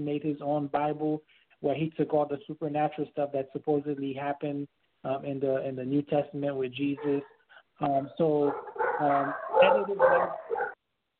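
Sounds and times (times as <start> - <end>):
speech: 0.0 - 10.6
dogs barking and yipping: 7.0 - 10.8.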